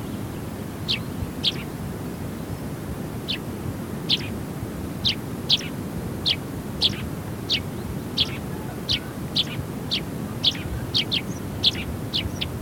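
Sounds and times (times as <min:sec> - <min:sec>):
Eurasian tree sparrow chirping: 0:00.1 - 0:04.4, 0:05.0 - 0:12.6.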